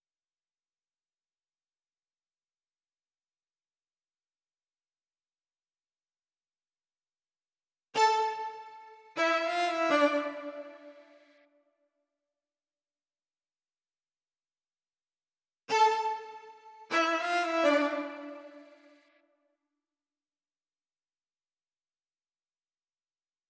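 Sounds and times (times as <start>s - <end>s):
strings playing in A minor: 8.0s - 11.1s, 15.7s - 18.8s.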